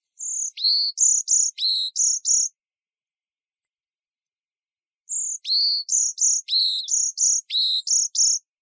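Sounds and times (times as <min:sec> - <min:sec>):
varied tit: 0:00.1 - 0:02.5, 0:05.1 - 0:08.5.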